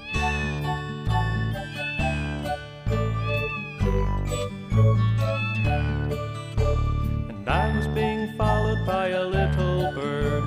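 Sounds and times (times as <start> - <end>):
fluffy little kitten meowing: 0.0 - 6.4
steady bouncy musical backing: 0.0 - 10.4.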